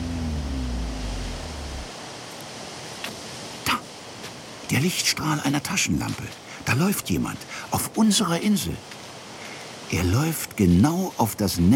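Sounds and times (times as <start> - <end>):
low droning hum: 0.0 - 1.9
hissing wash of sea surf: 0.0 - 11.3
speech: 4.7 - 9.0, 9.9 - 11.7.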